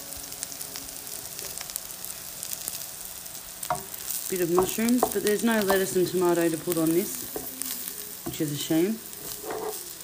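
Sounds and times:
hamburgers sizzling in a frying pan: 0:00.0 - 0:10.0
speech: 0:04.3 - 0:07.4, 0:08.4 - 0:09.1
scrape in frying pan: 0:09.1 - 0:10.0.

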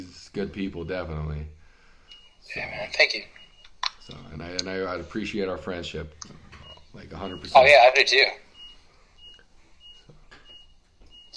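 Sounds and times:
faint hum: 0:00.0 - 0:11.3
speech: 0:00.4 - 0:01.6, 0:02.4 - 0:03.4, 0:04.0 - 0:08.4
forklift reversing alarm beeping: 0:00.7 - 0:11.3.

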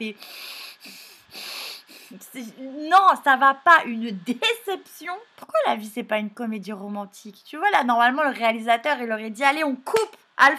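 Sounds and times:
speech: 0:00.0 - 0:01.0, 0:02.1 - 0:10.5
voice mimicking blocked nasal breathing of a man kissing: 0:00.2 - 0:02.2.

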